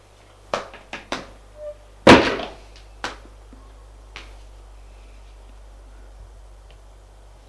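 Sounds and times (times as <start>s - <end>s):
low steady hum: 0.0s - 7.4s
door shutting with a loud solid bang: 2.1s - 2.6s.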